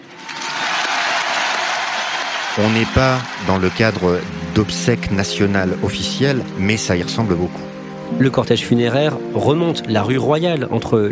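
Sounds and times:
crowd applauding along a funeral procession route in Paris: 0.0 - 6.6
speech: 2.6 - 11.0.

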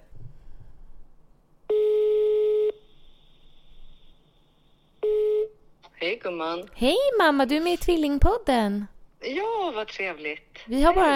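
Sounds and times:
faint hiss: 0.0 - 11.1
telephone ringback tone while placing a call: 1.7 - 2.9, 5.0 - 5.6
speech: 6.2 - 11.1.

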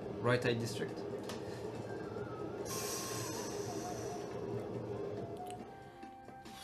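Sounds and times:
metro train running with a loud continuous rumble: 0.0 - 6.6
speech: 0.2 - 1.4.

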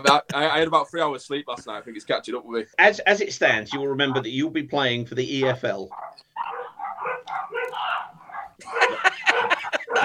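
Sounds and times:
laughter: 0.0 - 0.6, 3.7 - 4.4, 8.6 - 10.0
speech: 0.0 - 6.6
dog barking and yipping: 3.7 - 4.3, 5.9 - 10.0.

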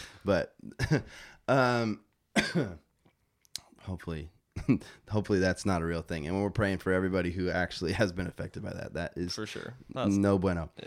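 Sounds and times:
speech: 0.2 - 2.8, 3.9 - 10.8
person coughing: 2.4 - 2.9
throat clearing: 2.4 - 2.9.

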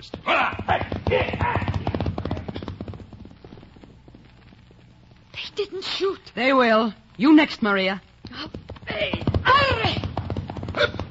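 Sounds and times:
speech: 0.0 - 1.4, 5.6 - 8.1
galloping horse hoofbeats with rider: 0.0 - 4.9, 8.2 - 11.0.

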